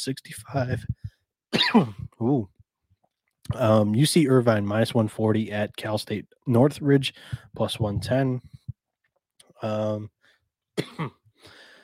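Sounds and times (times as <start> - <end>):
speech: 0.0 - 2.6, 3.5 - 8.7, 9.6 - 10.2, 10.8 - 11.6
person coughing: 1.6 - 2.1, 10.8 - 11.2
person clearing throat: 1.6 - 2.4, 10.8 - 11.2.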